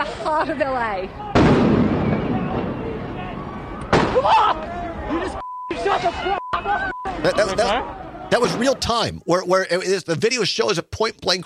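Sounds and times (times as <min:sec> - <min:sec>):
dense crowd hubbub in a city street: 0:00.0 - 0:09.4
speech: 0:00.3 - 0:01.8, 0:04.2 - 0:11.4
people shouting: 0:01.1 - 0:08.8
police firing rubber bullets at protesters in a city street: 0:01.4 - 0:02.4, 0:03.9 - 0:04.3.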